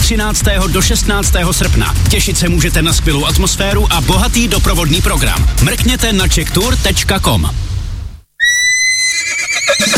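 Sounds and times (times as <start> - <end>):
speech: 0.1 - 7.7
horse whinnying: 8.4 - 9.9.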